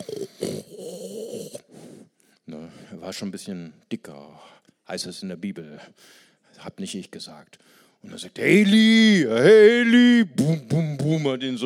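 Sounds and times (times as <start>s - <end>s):
voice mimicking loud snoring: 0.0s - 1.7s
speech: 3.0s - 11.6s.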